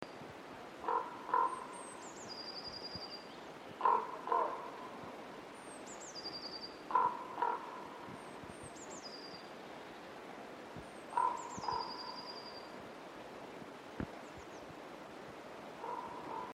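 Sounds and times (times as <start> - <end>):
raven: 0.8 - 1.8, 3.8 - 5.1, 6.9 - 8.2, 11.1 - 12.3, 15.8 - 16.5.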